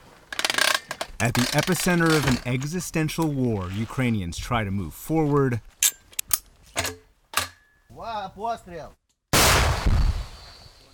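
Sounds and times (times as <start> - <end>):
speech: 1.2 - 5.7, 8.4 - 9.0
anti-tank rocket-propelled grenade fired toward Russian troops south of Orikhiv: 9.4 - 10.9.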